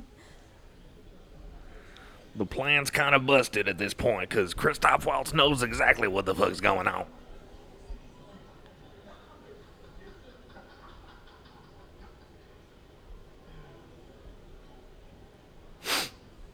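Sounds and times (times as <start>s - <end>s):
murmur of low voices: 0.0s - 14.6s
laughter: 2.4s - 7.1s, 9.3s - 12.9s
speech: 2.4s - 7.2s
person sniffling: 15.8s - 16.2s.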